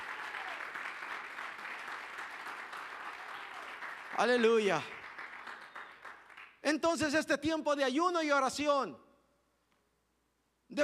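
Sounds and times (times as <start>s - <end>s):
congregation applauding: 0.0s - 7.1s
speech: 4.2s - 5.0s, 6.7s - 9.0s.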